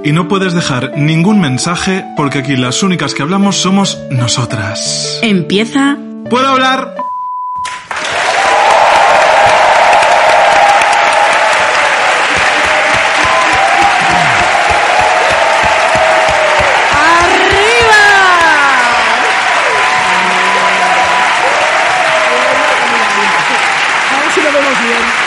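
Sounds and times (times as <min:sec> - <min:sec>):
speech: 0:00.0 - 0:07.8
large live audience applauding: 0:07.7 - 0:25.2
crowd cheering, whooping and whistling: 0:07.9 - 0:25.2.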